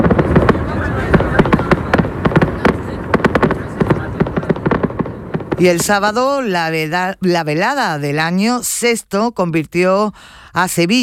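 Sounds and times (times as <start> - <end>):
fireworks festival at night closing a town fiesta: 0.0 - 8.6
speech: 5.6 - 11.0.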